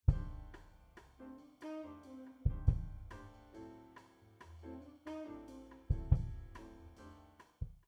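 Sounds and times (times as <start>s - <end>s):
high-pass filtered kick drum: 0.0s - 0.5s, 2.5s - 3.1s, 5.9s - 6.6s.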